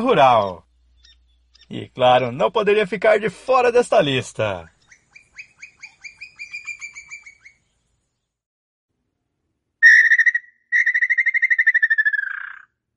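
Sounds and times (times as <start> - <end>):
speech: 0.0 - 0.6, 1.7 - 4.8
Brazilian woodpecker call, rural open-country species: 0.4 - 1.7, 4.7 - 7.8, 9.8 - 12.8.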